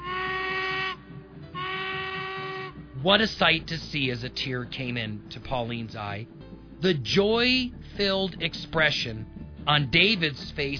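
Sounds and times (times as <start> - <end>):
toy train whistle blowing: 0.0 - 1.0, 1.6 - 2.7
speech: 3.0 - 10.7.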